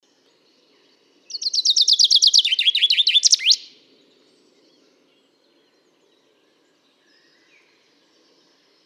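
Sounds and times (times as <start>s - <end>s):
Fringilla coelebs common chaffinch song phrase: 0.2s - 3.8s.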